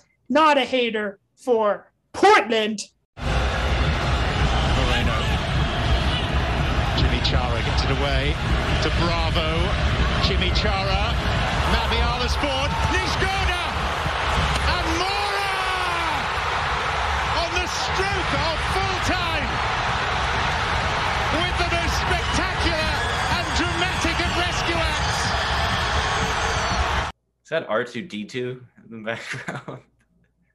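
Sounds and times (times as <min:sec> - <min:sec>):
speech: 0:00.3 - 0:03.3, 0:07.2 - 0:13.4, 0:27.5 - 0:29.9
stadium crowd roaring: 0:03.2 - 0:27.1
stadium fans screaming: 0:03.2 - 0:27.1
laughter: 0:29.2 - 0:29.8.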